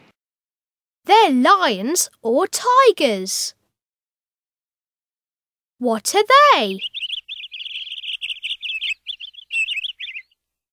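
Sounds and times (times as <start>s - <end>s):
speech: 1.1s - 3.6s, 5.8s - 7.1s
birds chirping and twittering: 6.1s - 10.4s.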